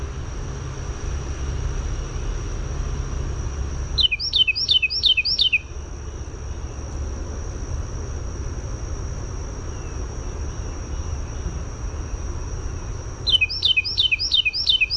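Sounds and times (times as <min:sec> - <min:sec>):
steady high whine: 0:00.0 - 0:14.9
Carolina wren singing fast repeated phrases: 0:04.0 - 0:05.7, 0:13.2 - 0:14.9.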